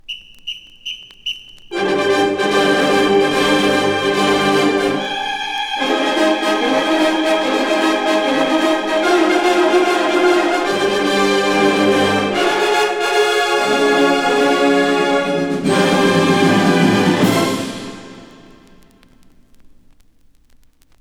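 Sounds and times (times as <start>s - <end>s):
marching band playing a fanfare at half-time: 1.7s - 5.2s, 5.8s - 18.7s.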